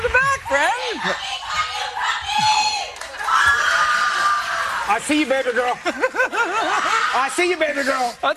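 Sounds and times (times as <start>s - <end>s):
live crowd shouting and cheering: 0.0s - 8.3s
high-pitched screams and whoops: 0.4s - 5.0s, 6.6s - 7.5s
speech: 1.0s - 1.3s, 5.0s - 8.3s
laughter: 3.1s - 8.2s.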